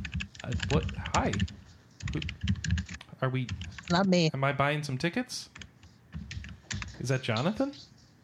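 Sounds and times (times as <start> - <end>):
typing on a computer keyboard: 0.0 - 4.0, 5.5 - 7.0
speech: 0.5 - 5.6, 7.0 - 7.9.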